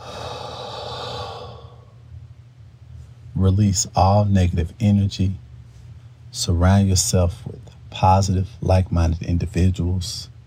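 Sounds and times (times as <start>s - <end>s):
deep breath in and out during a relaxation exercise: 0.0s - 2.0s
speech: 3.4s - 5.4s, 6.3s - 10.3s.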